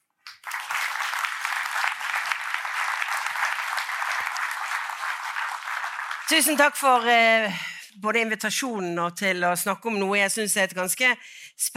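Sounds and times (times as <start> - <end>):
audience applause welcoming a speaker: 0.3 - 6.8
speech: 6.3 - 11.7.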